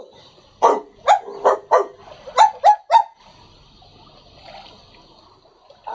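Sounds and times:
dog barking: 0.6s - 3.2s.

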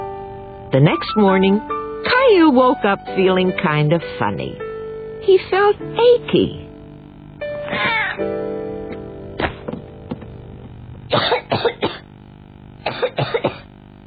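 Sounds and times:
speech: 0.7s - 4.6s, 5.2s - 6.6s, 8.2s - 8.5s, 11.1s - 11.7s
child coughing acted out by a voice: 7.7s - 8.1s, 11.1s - 12.1s, 12.9s - 13.7s.

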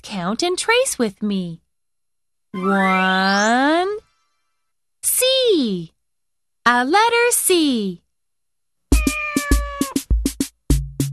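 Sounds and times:
speech: 0.0s - 1.6s, 2.5s - 4.0s, 5.2s - 5.9s, 6.6s - 8.0s
drawn-out cat meow falling in pitch: 2.6s - 3.5s, 8.9s - 10.1s.

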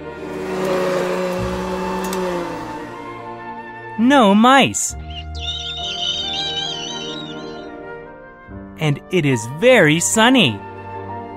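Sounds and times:
vacuum cleaner motor droning: 0.0s - 3.3s
speech: 4.0s - 5.0s, 8.8s - 10.7s.

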